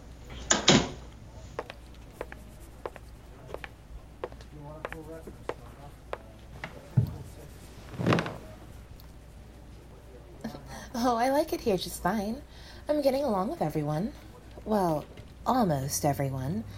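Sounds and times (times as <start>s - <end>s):
door shutting with a dull thud: 0.4s - 1.0s
speech: 11.0s - 16.7s.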